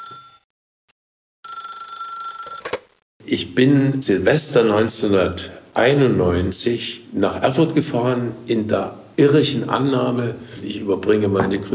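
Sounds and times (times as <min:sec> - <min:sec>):
telephone ringing with bright electronic tone: 0:00.0 - 0:00.4, 0:01.4 - 0:02.8
speech: 0:03.2 - 0:11.7.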